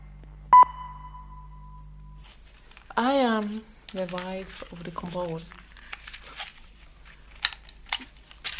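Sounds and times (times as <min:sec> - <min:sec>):
low hum: 0:00.0 - 0:08.5
speaking clock time signal beep: 0:00.5 - 0:02.2
steady high time signal tone: 0:00.5 - 0:02.2
speech: 0:03.0 - 0:05.6.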